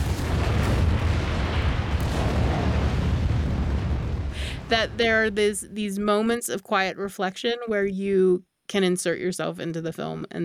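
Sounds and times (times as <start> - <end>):
crackling debris: 0.0 - 5.7
cinematic explosions with deep bass rumble: 0.0 - 5.8
speech: 4.7 - 10.4.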